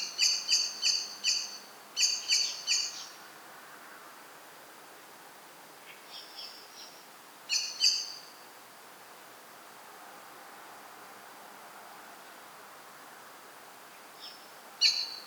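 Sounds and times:
common blackbird Turdus merula giving hard chinking calls: 0:00.0 - 0:03.2, 0:14.2 - 0:15.2.

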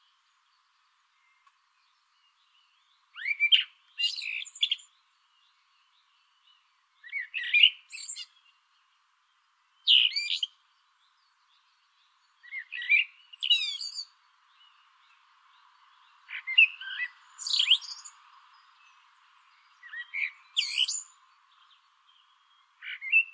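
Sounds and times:
Eurasian blackbird Turdus merula singing: 0:00.0 - 0:23.3.

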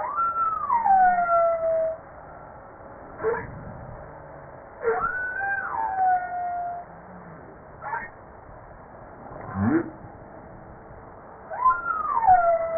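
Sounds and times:
humpback whale song: 0:00.0 - 0:02.0, 0:04.8 - 0:08.2, 0:11.5 - 0:12.7.

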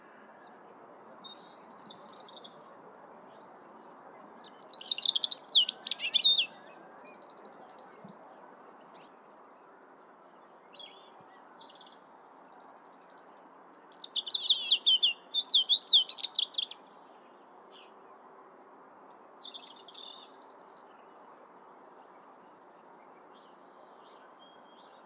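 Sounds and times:
European robin Erithacus rubecula singing: 0:01.1 - 0:02.8, 0:04.2 - 0:08.2, 0:11.6 - 0:16.9, 0:19.4 - 0:20.9.

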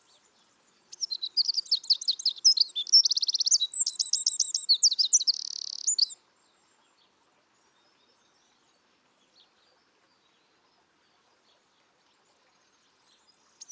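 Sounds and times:
Eurasian wren Troglodytes troglodytes song: 0:00.9 - 0:06.2, 0:13.5 - 0:13.7.

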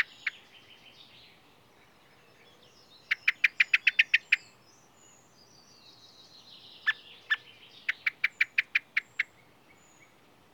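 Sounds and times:
common blackbird Turdus merula chattering call: 0:00.0 - 0:00.5, 0:03.0 - 0:04.6, 0:06.8 - 0:09.4.

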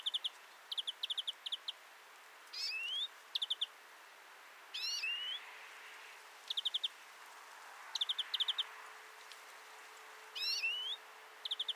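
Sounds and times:
European greenfinch calling: 0:00.0 - 0:01.8, 0:02.5 - 0:03.8, 0:04.7 - 0:05.4, 0:06.5 - 0:06.9, 0:07.9 - 0:08.7, 0:10.4 - 0:11.7
light hiss: 0:00.0 - 0:11.7.

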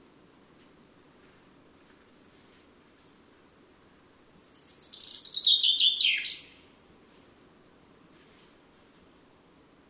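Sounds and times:
Fringilla coelebs common chaffinch song: 0:04.4 - 0:06.6.

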